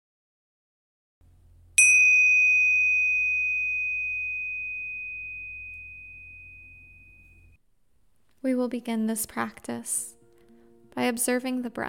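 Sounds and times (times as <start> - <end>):
faint low hum: 1.2 - 8.4
bright meditation chime ringing: 1.8 - 7.6
speech: 8.4 - 10.2, 11.0 - 11.8.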